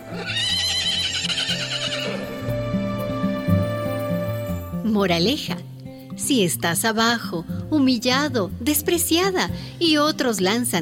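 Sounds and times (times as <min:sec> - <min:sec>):
horse neighing: 0:00.0 - 0:02.8
low musical backing: 0:00.0 - 0:10.8
speech: 0:05.0 - 0:05.7, 0:06.3 - 0:10.8.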